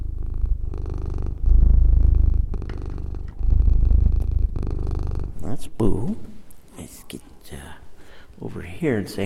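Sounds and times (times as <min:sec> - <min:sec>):
cat purring loudly: 0:00.0 - 0:05.7
speech: 0:05.6 - 0:06.3, 0:07.1 - 0:07.8, 0:08.4 - 0:09.2.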